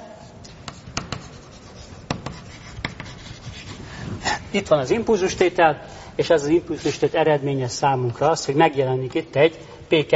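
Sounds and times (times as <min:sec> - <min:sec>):
lecturer handwriting on a diagram: 0:00.5 - 0:04.5
speech: 0:04.5 - 0:10.1.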